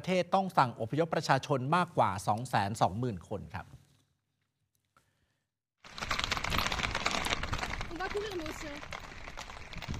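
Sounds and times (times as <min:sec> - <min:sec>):
speech: 0:00.0 - 0:03.8, 0:08.1 - 0:09.0
many panicked horses' hooves galloping on a hard road: 0:06.0 - 0:09.9.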